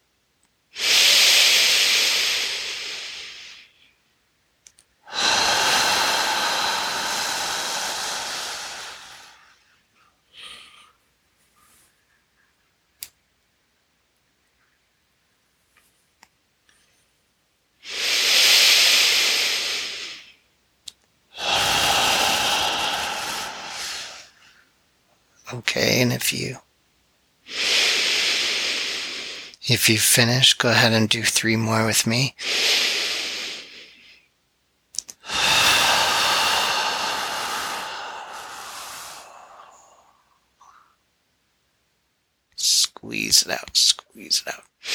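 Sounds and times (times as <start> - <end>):
slow deep breathing in a breathing exercise: 0.8 - 3.9, 5.0 - 9.7, 10.3 - 11.0, 17.9 - 20.4, 21.3 - 24.8, 27.5 - 29.6, 32.4 - 34.3, 35.1 - 41.0
speech: 25.5 - 26.7, 29.7 - 32.6, 43.4 - 43.8.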